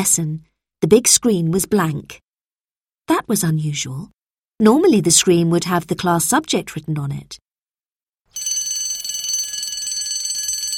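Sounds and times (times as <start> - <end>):
speech: 0.0 - 2.2, 3.1 - 7.4
loud electric school bell ringing for start of lessons: 8.4 - 10.7.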